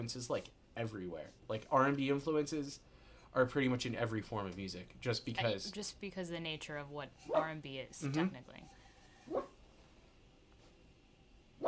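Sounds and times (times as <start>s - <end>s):
speech: 0.0s - 9.5s
dog barking muffled: 9.3s - 9.6s.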